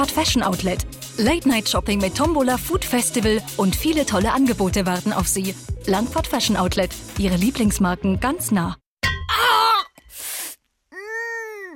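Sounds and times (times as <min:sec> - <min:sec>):
speech: 0:00.0 - 0:08.8
person gasping: 0:10.1 - 0:11.7
person groaning in pain from a gold bar falling on the foot: 0:10.9 - 0:11.7.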